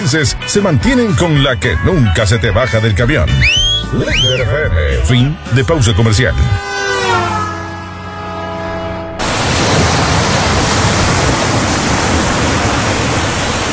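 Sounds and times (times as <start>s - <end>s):
speech: 0.1s - 6.9s
brief sustained tone: 3.1s - 10.4s
ocean waves washing onto the beach at Playa Bajo Alto: 6.8s - 13.7s.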